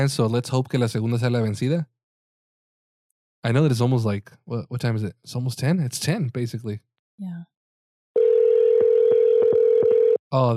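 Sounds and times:
speech: 0:00.0 - 0:01.9, 0:03.4 - 0:07.5, 0:10.3 - 0:10.5
phone ringback tone while placing a call: 0:08.2 - 0:10.2.

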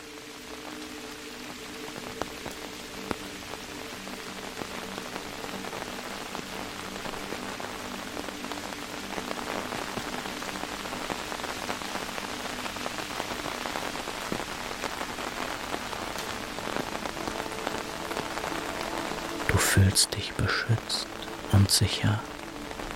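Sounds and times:
steady rain pattering on an umbrella: 0:00.0 - 0:22.9
speech: 0:19.8 - 0:22.3.

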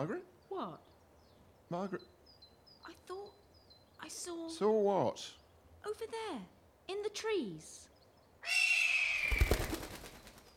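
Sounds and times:
speech: 0:00.0 - 0:00.9, 0:01.7 - 0:02.2, 0:04.0 - 0:08.6
heron screeching in the dark: 0:08.4 - 0:09.6
low thumping wing flutters of a heron: 0:08.5 - 0:10.5.

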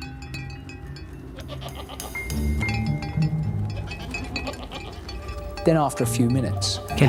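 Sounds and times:
bell clinking: 0:00.0 - 0:07.0
shuffle of goat hooves: 0:00.0 - 0:07.0
several goats bleating: 0:01.3 - 0:02.3, 0:03.6 - 0:05.2
speech: 0:05.6 - 0:07.0.

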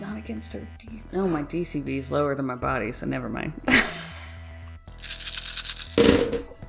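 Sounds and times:
speech: 0:00.3 - 0:04.0
many dice rolling across a hard surface: 0:05.0 - 0:06.5.

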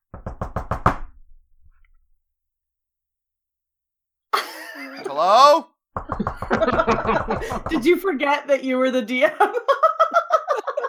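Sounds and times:
knocking on a door: 0:00.1 - 0:01.4, 0:06.0 - 0:08.0
laughter: 0:04.4 - 0:05.2, 0:06.0 - 0:08.0, 0:09.2 - 0:10.8
speech: 0:05.1 - 0:10.0.

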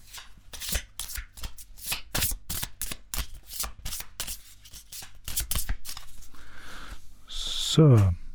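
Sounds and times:
deck of playing cards being shuffled by hand: 0:00.0 - 0:06.2
speech: 0:07.7 - 0:08.2.

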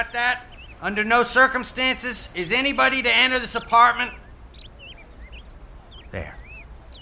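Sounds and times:
speech: 0:00.0 - 0:04.2, 0:06.1 - 0:06.4
birds at a nest chirping and calling: 0:00.0 - 0:07.0.

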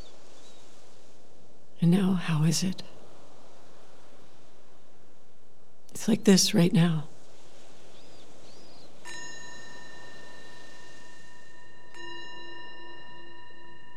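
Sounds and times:
soft hiss: 0:00.0 - 0:13.9
speech: 0:01.8 - 0:02.9, 0:06.0 - 0:07.1
meditation bell ringing: 0:08.5 - 0:13.9.

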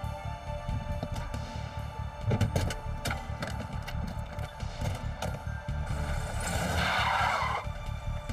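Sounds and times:
stolen car engine rumbling: 0:00.6 - 0:08.3
tires of a stolen car squealing in a hotel parking lot: 0:04.4 - 0:08.3.

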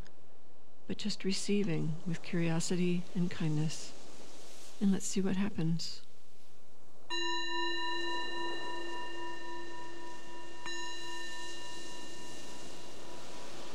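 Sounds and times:
speech: 0:00.9 - 0:04.0, 0:04.8 - 0:06.0
meditation bell struck and ringing: 0:07.1 - 0:13.7.

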